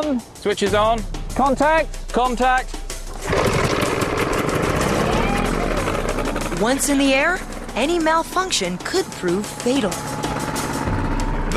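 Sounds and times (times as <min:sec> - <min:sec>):
speech: 0:00.0 - 0:02.8, 0:06.6 - 0:10.2
propeller aircraft engine started and run before a competition: 0:02.7 - 0:11.5.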